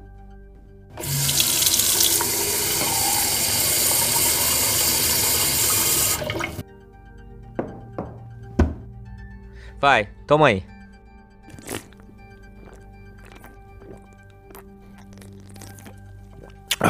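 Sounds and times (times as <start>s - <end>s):
water pouring: 1.0s - 6.6s, 11.5s - 16.8s
hollow clunks: 7.6s - 8.9s
speech: 9.8s - 10.7s.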